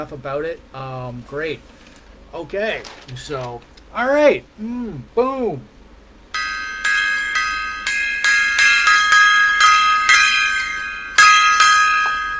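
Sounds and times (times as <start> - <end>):
speech: 0.0 - 5.7
bright metallic gong being struck: 6.3 - 12.3.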